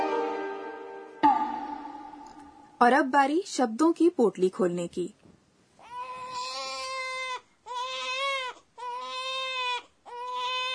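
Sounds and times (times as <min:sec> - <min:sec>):
speech: 0:02.8 - 0:05.2
infant crying loudly: 0:05.8 - 0:10.7.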